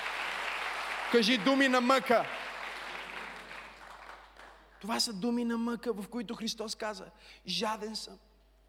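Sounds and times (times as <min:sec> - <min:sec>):
audience clapping: 0:00.0 - 0:04.8
speech: 0:01.1 - 0:02.4, 0:04.8 - 0:08.3.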